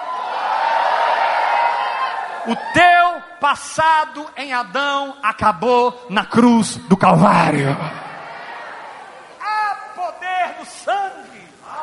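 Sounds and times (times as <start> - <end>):
large audience shouting and cheering in victory: 0.0 - 3.4, 7.8 - 10.4, 11.5 - 11.8
speech: 2.4 - 8.1.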